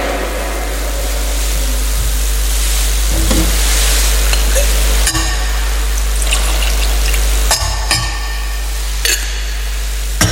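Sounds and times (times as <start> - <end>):
steady low hum: 0.1 - 10.2
vessels clinking: 3.1 - 8.2
water pouring into a metal chalice of wine during Mass: 3.1 - 9.4.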